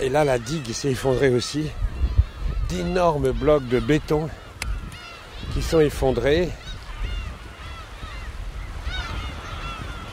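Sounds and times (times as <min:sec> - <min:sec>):
speech: 0:00.0 - 0:01.9, 0:02.7 - 0:04.4, 0:05.6 - 0:06.6
seabirds honking and squawking on sandbanks: 0:00.0 - 0:10.1
steady low rumble of wind or water: 0:00.0 - 0:10.1.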